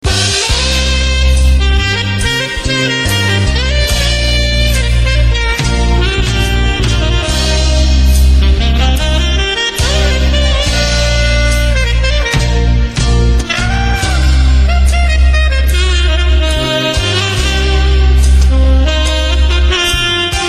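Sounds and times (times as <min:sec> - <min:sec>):
smooth jazz saxophone: 0:00.0 - 0:20.4.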